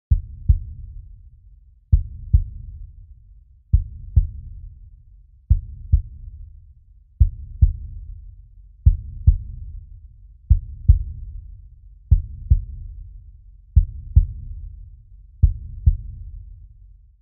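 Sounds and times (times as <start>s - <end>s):
heartbeat groove: 0.1s - 1.1s, 1.9s - 3.0s, 3.7s - 4.8s, 5.5s - 6.5s, 7.2s - 16.6s.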